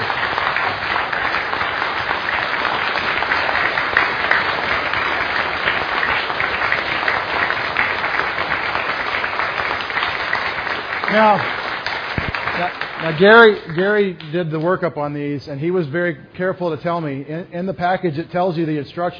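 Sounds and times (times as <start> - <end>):
audience applause: 0.0 - 13.8
speech: 11.2 - 11.6, 13.0 - 19.1.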